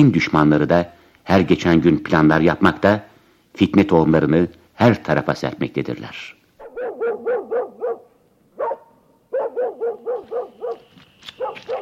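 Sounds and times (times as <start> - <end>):
speech: 0.0 - 6.4
mangy dog barking in front of a house in Tabriz: 6.6 - 11.8.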